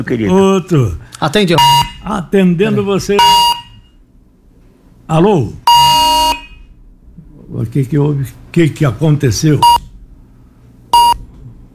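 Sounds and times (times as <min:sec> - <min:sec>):
speech: 0:00.0 - 0:03.5, 0:05.1 - 0:05.7, 0:07.5 - 0:09.8
faint low hum: 0:00.0 - 0:11.7
high-pitched whistle beep on a phone line: 0:03.2 - 0:03.9, 0:05.7 - 0:06.6, 0:11.0 - 0:11.2.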